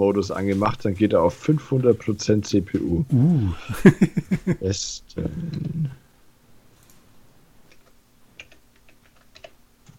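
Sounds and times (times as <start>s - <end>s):
speech: 0.0s - 6.0s
steady low hum: 0.0s - 9.9s
laughter: 3.5s - 4.8s
typing on a computer keyboard: 7.7s - 9.9s.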